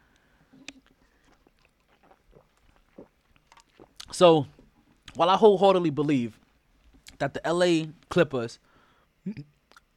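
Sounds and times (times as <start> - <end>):
swallow: 0.6 - 4.1
person sipping an alcoholic drink: 0.6 - 4.2
soft slurps and wet mouth clicks: 0.6 - 5.2
speech: 4.2 - 4.6, 5.2 - 6.4, 7.2 - 9.5.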